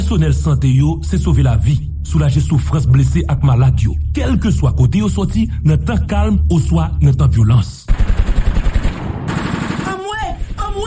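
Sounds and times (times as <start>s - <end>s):
speech: 0.1s - 8.3s
automatic gunfire bursts during violent street clashes in Haiti: 7.9s - 10.2s.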